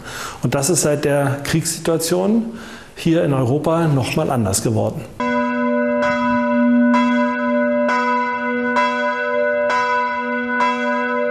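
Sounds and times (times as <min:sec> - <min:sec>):
speech: 0:00.4 - 0:05.2
church bells ringing: 0:05.2 - 0:11.2.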